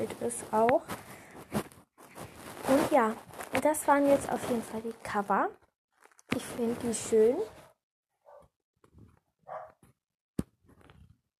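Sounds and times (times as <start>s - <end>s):
speech: 0.0s - 1.0s, 2.7s - 5.6s, 6.4s - 7.6s
dog barking as if from another room: 8.2s - 8.5s, 9.4s - 9.8s.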